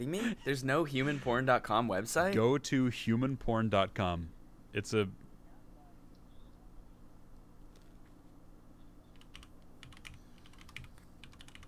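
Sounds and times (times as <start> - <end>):
speech: 0.0 - 5.2
low steady hum: 0.0 - 11.6
loud mechanical computer keyboard with brown switches typing: 9.1 - 11.6.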